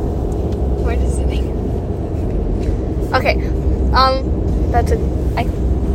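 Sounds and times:
car interior road rumble while driving: 0:00.0 - 0:05.9
speech: 0:04.0 - 0:05.6.

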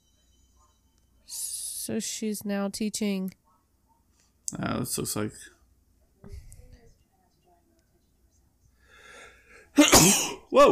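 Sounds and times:
speech: 0:01.3 - 0:03.4, 0:04.5 - 0:05.6, 0:10.0 - 0:10.7
soft breathy intake: 0:08.8 - 0:09.7
person sneezing: 0:09.8 - 0:10.5.

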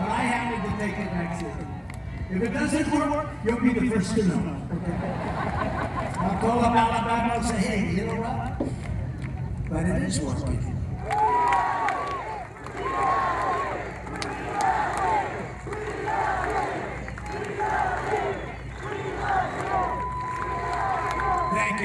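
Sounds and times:
rally crowd cheering and chanting: 0:00.0 - 0:03.3, 0:11.0 - 0:21.8
speech: 0:02.3 - 0:08.8, 0:09.7 - 0:11.6
laughter: 0:04.6 - 0:06.9.

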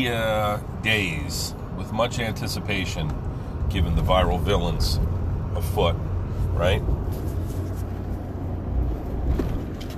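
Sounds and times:
speech: 0:00.0 - 0:07.2
cars passing along a highway: 0:00.0 - 0:09.9.

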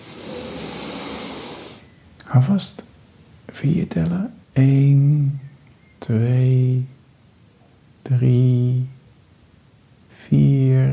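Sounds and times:
slow deep inhale during a guided relaxation breathing exercise: 0:00.0 - 0:01.9
speech: 0:02.3 - 0:05.4, 0:06.0 - 0:07.0, 0:08.1 - 0:08.9, 0:10.3 - 0:10.9.

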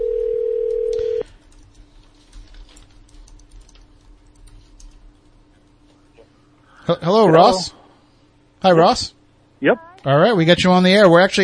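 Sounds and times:
loud steady telephone dial tone: 0:00.0 - 0:01.2
speech: 0:06.9 - 0:07.8, 0:08.6 - 0:11.4.

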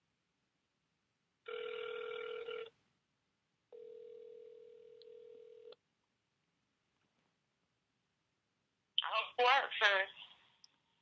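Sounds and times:
telephone tones of a call dialed to a disconnected number: 0:01.5 - 0:02.7, 0:03.8 - 0:05.8
speech: 0:09.4 - 0:10.2.

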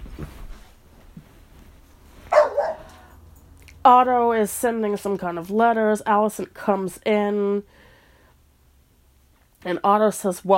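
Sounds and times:
dog barking: 0:02.3 - 0:03.1
speech: 0:03.9 - 0:07.8, 0:09.6 - 0:10.5.

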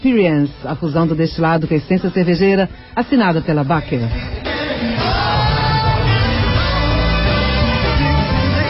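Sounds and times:
speech: 0:00.0 - 0:04.4
recorded rock song with strong bass: 0:00.0 - 0:08.6.

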